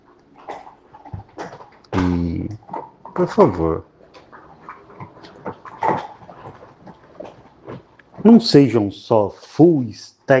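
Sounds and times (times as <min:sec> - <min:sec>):
dogs gnawing on bones: 0:00.2 - 0:01.9, 0:02.6 - 0:03.3, 0:04.0 - 0:08.4
speech: 0:03.2 - 0:03.9, 0:08.2 - 0:10.3.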